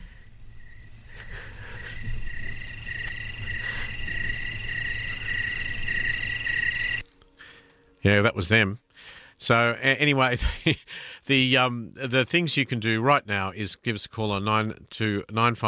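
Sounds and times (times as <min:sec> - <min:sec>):
chorus of night crickets chirping: 0:00.0 - 0:07.0
speech: 0:08.0 - 0:15.6.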